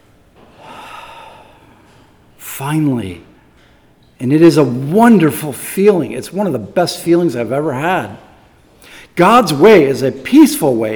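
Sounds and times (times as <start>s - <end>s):
big breath: 0.5s - 2.0s, 8.7s - 9.2s
speech: 2.6s - 3.3s, 4.2s - 8.3s, 9.2s - 10.9s.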